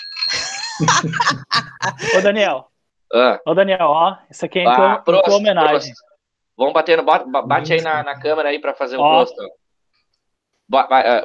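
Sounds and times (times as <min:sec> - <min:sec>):
small bell on a drinking cup ringing: 0:00.0 - 0:01.2
person laughing: 0:00.2 - 0:02.4
speech: 0:00.8 - 0:09.6, 0:10.7 - 0:11.2.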